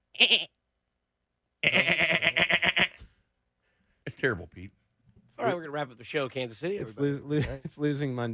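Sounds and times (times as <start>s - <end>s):
person imitating a goat bleat: 0.0s - 0.5s, 1.6s - 3.0s
speech: 0.2s - 0.6s, 4.2s - 4.8s, 5.4s - 8.3s.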